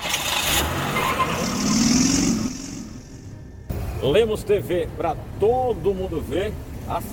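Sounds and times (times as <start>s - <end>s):
car engine revving in rush-hour traffic of Codó: 0.0s - 3.6s
steady street traffic noise: 0.0s - 7.1s
speech: 4.0s - 7.1s.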